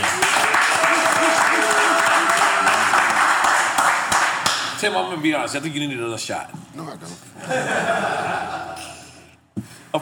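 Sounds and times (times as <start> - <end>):
people shouting and cheering: 0.0 - 3.1
audience clapping: 0.0 - 4.8
speech: 4.8 - 8.7
laughter: 7.4 - 9.2.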